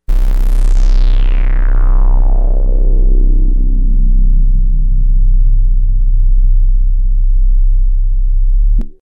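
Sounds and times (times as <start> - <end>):
sub bass: 0.0 - 9.0.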